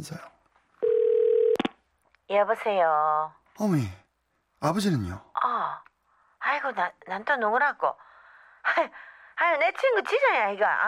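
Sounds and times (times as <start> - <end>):
speech: 0.0 - 0.3, 2.3 - 4.0, 4.6 - 10.8
payphone dial tone: 0.8 - 1.7.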